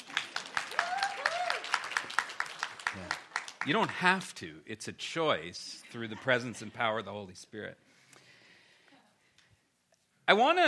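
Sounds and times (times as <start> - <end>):
church audience clapping in applause for church staff: 0.0 - 4.4
speech: 3.6 - 7.9, 10.3 - 10.6.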